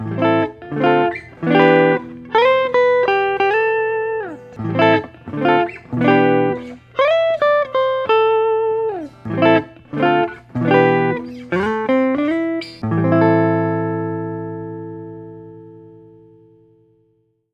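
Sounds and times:
Collings Eastside LC deep-bodied guitar: 0.0s - 17.5s.

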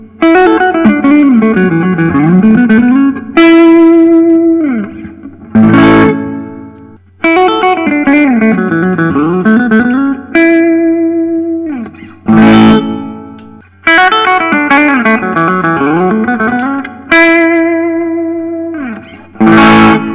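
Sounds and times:
Gibson Custom electric guitar: 0.0s - 20.1s.

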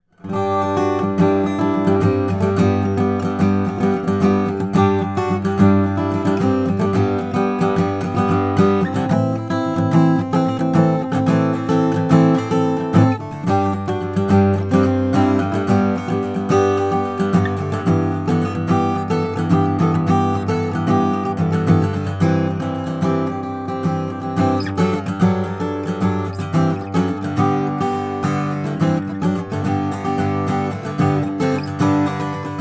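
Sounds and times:
mahogany tenor guitar: 0.0s - 32.5s.

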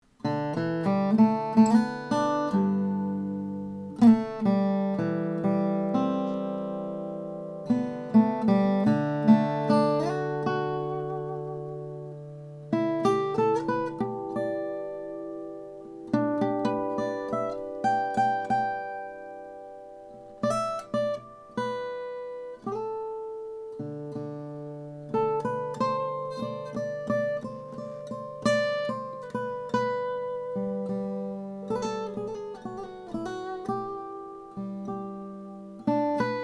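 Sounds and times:
mahogany acoustic guitar: 0.0s - 36.4s.

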